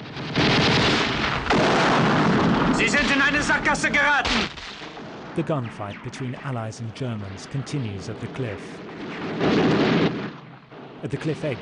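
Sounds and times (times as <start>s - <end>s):
fuel containers exploding after being hit by a tank shell: 0.1s - 5.9s, 8.6s - 11.6s
speech: 3.2s - 4.8s, 5.4s - 10.0s, 11.0s - 11.6s.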